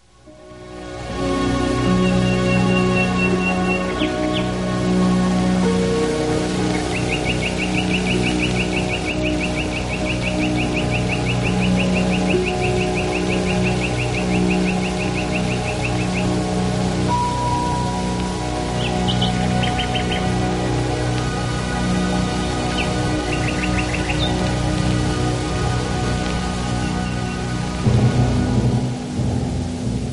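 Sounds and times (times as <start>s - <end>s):
common nightingale singing trills and whistles: 0.0s - 27.8s
orchestral backdrop of soft held chords: 0.0s - 30.1s.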